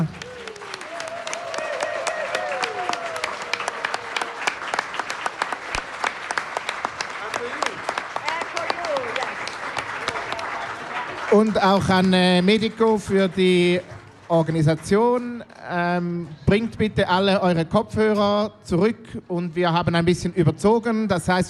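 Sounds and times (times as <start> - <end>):
audience applause after a panel discussion: 0.0 - 15.2
speech: 11.4 - 21.4.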